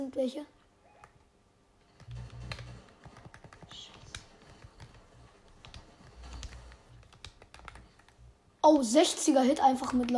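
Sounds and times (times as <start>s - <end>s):
speech: 0.1s - 0.6s, 8.6s - 10.1s
low hum: 1.7s - 7.1s
keys clacking on a computer keyboard during video gameplay: 1.9s - 8.8s, 9.8s - 10.1s.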